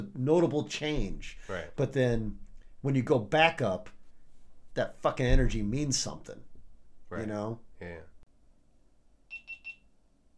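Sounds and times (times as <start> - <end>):
speech: 0.0 - 4.0, 4.8 - 6.5, 7.1 - 8.1
high-pitched short electronic beeps: 9.3 - 9.8.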